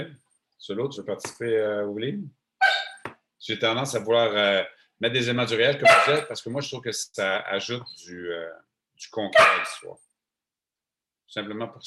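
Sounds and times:
speech: 0.0s - 2.7s, 3.4s - 10.0s, 11.3s - 11.8s
female dog barking: 2.6s - 3.0s, 5.8s - 6.3s, 9.4s - 9.8s.

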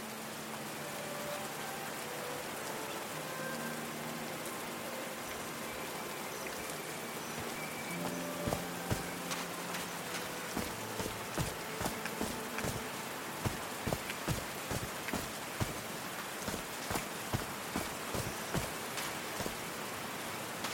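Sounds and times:
steady rain pattering on a surface: 0.0s - 20.7s
sharper drips: 6.3s - 20.7s.

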